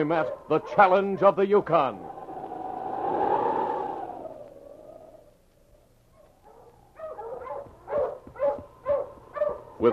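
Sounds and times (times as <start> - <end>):
speech: 0.0 - 2.1, 9.8 - 9.9
husky barking: 0.2 - 1.4, 6.1 - 9.9
husky howling: 1.9 - 5.2.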